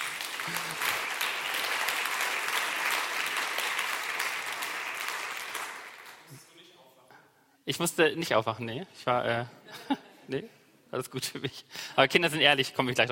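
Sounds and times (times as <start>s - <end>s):
audience applause: 0.0s - 6.3s
speech: 7.7s - 13.0s.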